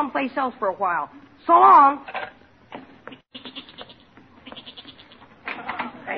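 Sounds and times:
speech: 0:00.0 - 0:02.3
goat bleating: 0:03.1 - 0:05.4.

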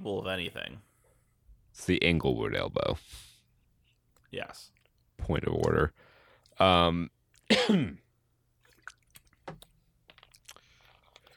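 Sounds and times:
speech: 0:00.0 - 0:00.9, 0:01.8 - 0:03.3, 0:04.3 - 0:08.0
person coughing: 0:07.5 - 0:08.1
small mouth noises: 0:08.6 - 0:11.3.

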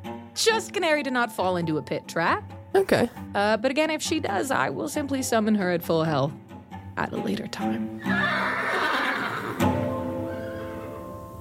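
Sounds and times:
speech: 0:00.4 - 0:06.4, 0:07.0 - 0:08.6
horse neighing in a long wavering whinny: 0:08.0 - 0:11.0.

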